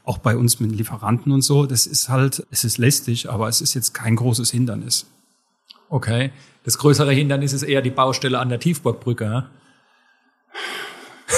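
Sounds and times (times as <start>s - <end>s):
speech: 0.1s - 5.2s, 5.9s - 9.6s
man taking a deep breath: 9.6s - 11.3s.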